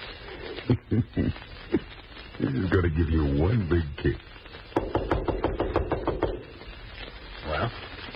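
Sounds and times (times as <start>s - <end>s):
speech: 0.7s - 4.4s
firm knocking on a door: 4.8s - 6.4s.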